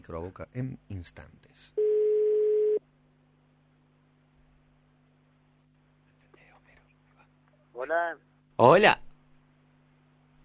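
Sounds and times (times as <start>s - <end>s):
speech: 0.0s - 1.8s, 7.8s - 9.0s
telephone line tone for an incoming call: 1.8s - 2.8s.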